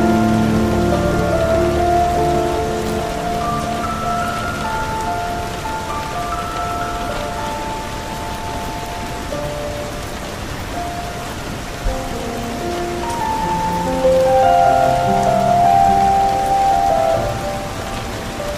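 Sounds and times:
slow soft classical melody of long held notes: 0.0 - 18.5
steady rain: 0.0 - 18.5.

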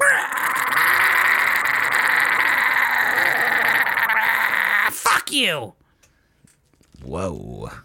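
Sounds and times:
raspy high-pitched demonic screech: 0.0 - 5.1
speech: 5.3 - 5.8, 7.1 - 7.8.

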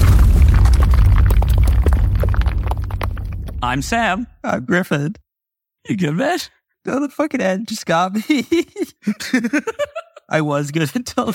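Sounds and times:
cannon blast with deep rumbling boom: 0.0 - 4.2
crackling popping debris-like noise: 0.0 - 4.2
speech: 3.7 - 5.2, 5.8 - 11.3.

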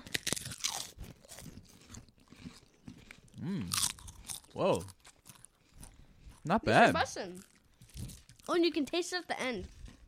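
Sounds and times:
bite into a crunchy hot honey potato chip: 0.0 - 10.0
speech: 4.6 - 5.0, 6.4 - 7.5, 8.5 - 9.8.

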